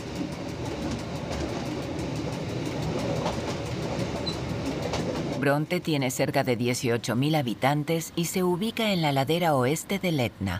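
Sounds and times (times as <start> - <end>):
train pulling into the station at Bronte on the western slope of Etna: 0.0 - 5.6
speech: 5.4 - 10.5.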